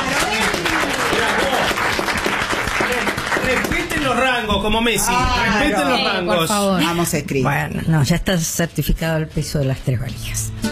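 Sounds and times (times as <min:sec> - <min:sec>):
studio audience applause at a game show: 0:00.0 - 0:05.0
speech: 0:04.4 - 0:10.6.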